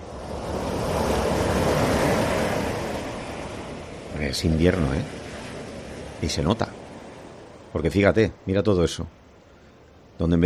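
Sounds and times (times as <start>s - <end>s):
wave breaking on the shore: 0.0s - 7.8s
speech: 4.3s - 5.2s, 6.2s - 6.8s, 7.7s - 9.2s, 10.2s - 10.4s.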